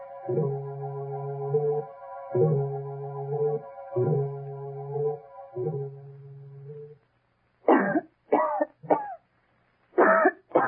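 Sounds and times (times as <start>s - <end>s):
sustained pulsing musical tones: 0.0s - 7.0s
woman coughing: 7.7s - 9.2s, 10.0s - 10.6s.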